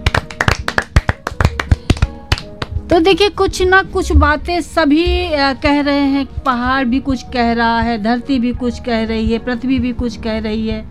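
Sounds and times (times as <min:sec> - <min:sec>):
children clapping their hands: 0:00.0 - 0:02.8
speech: 0:02.9 - 0:10.8.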